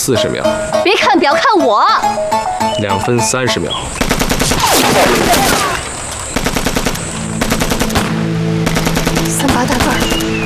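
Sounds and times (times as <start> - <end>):
speech: 0.0 - 5.8, 9.4 - 10.4
Taisho Type 11 light machine gun firing bursts: 4.0 - 10.2.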